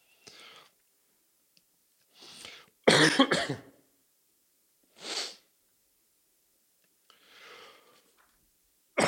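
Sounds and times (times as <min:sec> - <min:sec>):
person coughing: 0:02.9 - 0:03.8.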